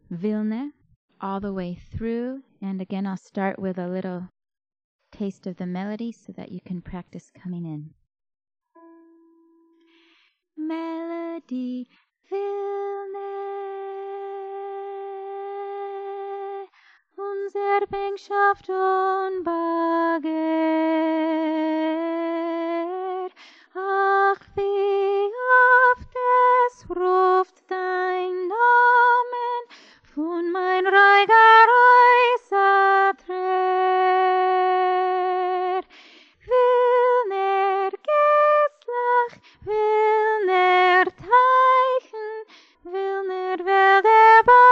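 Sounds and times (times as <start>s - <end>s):
soprano singing: 10.6s - 44.7s.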